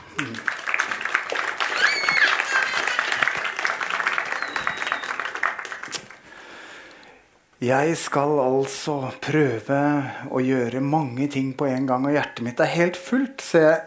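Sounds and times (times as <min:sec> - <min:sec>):
audience applauding a church worship team: 0:00.0 - 0:06.3
audience cheers and whistles: 0:01.6 - 0:03.3, 0:04.1 - 0:05.4
speech: 0:07.6 - 0:13.8.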